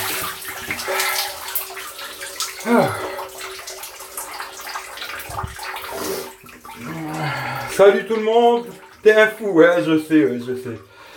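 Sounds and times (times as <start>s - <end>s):
hot shower water spraying under pressure: 0.0s - 8.6s
speech: 7.8s - 10.9s.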